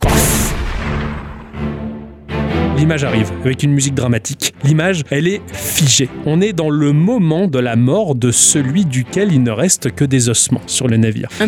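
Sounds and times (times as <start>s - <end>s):
heavy gunshot blasts in a video game scene aboard a ship: 0.0s - 1.8s
speech: 2.8s - 11.4s.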